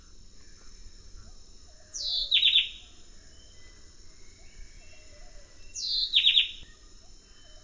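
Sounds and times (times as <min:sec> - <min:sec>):
high insect drone: 0:00.0 - 0:07.6
White-breasted wood-wren song in the eastern lowlands of South America: 0:01.6 - 0:07.6.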